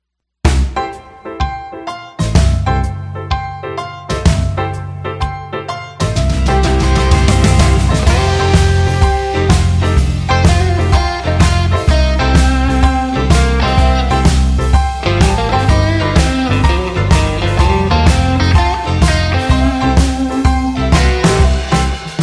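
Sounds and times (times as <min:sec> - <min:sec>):
blues guitar: 0:02.2 - 0:22.2.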